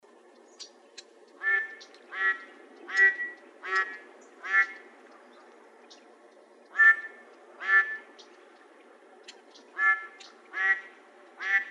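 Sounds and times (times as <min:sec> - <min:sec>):
mallard quacking: 0:01.4 - 0:04.8, 0:06.7 - 0:08.0, 0:09.8 - 0:11.6.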